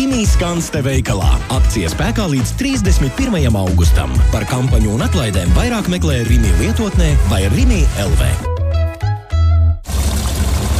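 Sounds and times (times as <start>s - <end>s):
speech: 0.2s - 8.5s
fuel pouring into a car's tank: 9.8s - 10.7s.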